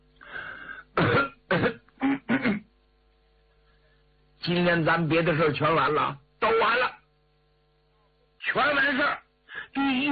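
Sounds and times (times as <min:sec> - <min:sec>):
man clearing his throat: 0:01.0 - 0:02.7
speech: 0:04.5 - 0:07.0, 0:08.5 - 0:09.2, 0:09.8 - 0:10.1.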